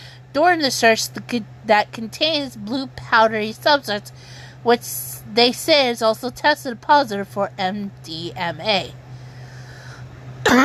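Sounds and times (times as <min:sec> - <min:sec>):
faint low hum: 0:00.0 - 0:10.6
speech: 0:00.4 - 0:09.0
harsh cough: 0:10.4 - 0:10.6.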